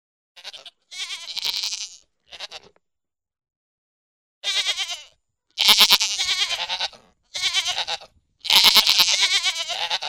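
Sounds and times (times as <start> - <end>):
pygmy goat bleating: 0.4 - 2.8, 4.4 - 10.0.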